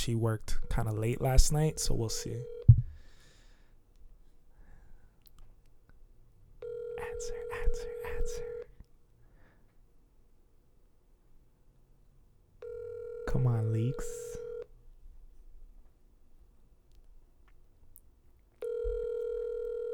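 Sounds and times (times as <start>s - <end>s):
speech: 0.0s - 2.6s, 7.2s - 8.5s, 13.3s - 14.3s
electronic ringback tone on an outgoing phone call: 0.5s - 2.7s, 6.6s - 8.7s, 12.6s - 14.6s, 18.6s - 19.9s
soft breathing: 2.8s - 5.2s, 9.2s - 9.8s.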